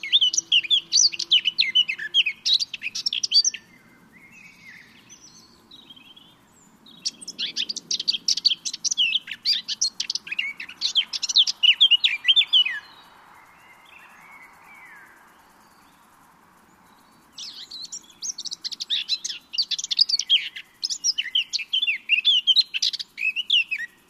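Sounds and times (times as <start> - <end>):
Eurasian blackcap Sylvia atricapilla song, scratchy chattering warble: 0.0 - 16.0, 16.8 - 24.0.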